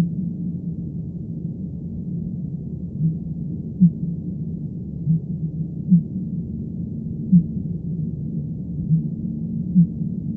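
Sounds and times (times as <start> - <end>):
continuous deep background rumble: 0.0 - 10.3
fin whale B physalus calling in low pulses: 2.8 - 10.3.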